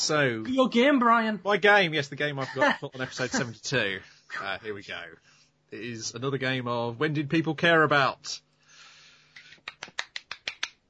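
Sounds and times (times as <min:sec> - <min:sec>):
speech: 0:00.0 - 0:08.4
person clapping hands: 0:09.4 - 0:10.8.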